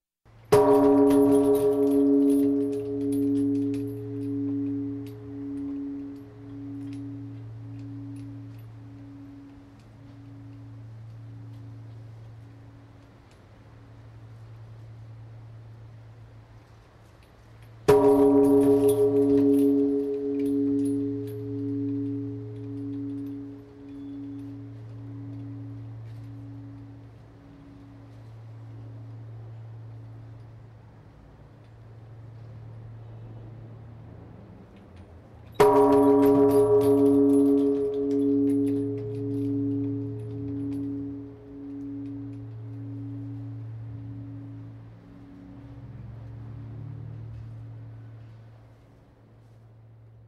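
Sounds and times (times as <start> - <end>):
large Buddhist temple bell struck for New Year's Eve: 0.5 - 13.0, 17.8 - 30.3, 35.5 - 48.3.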